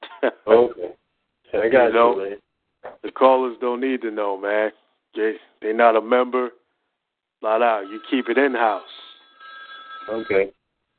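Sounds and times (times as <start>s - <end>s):
speech: 0.2s - 2.4s, 3.0s - 6.6s, 7.4s - 9.0s, 10.1s - 10.6s
telephone ringing with a high electronic tone: 7.6s - 10.5s.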